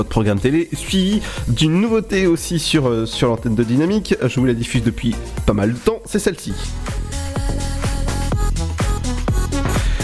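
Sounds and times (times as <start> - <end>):
speech: 0.0 - 7.6
steady pounding kick drum in electronic dance track: 6.9 - 9.9.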